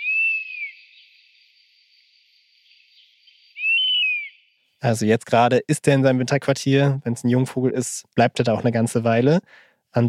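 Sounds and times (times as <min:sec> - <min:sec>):
European honey buzzard whistled calls: 0:00.0 - 0:01.4, 0:03.0 - 0:04.6
speech: 0:04.8 - 0:10.0.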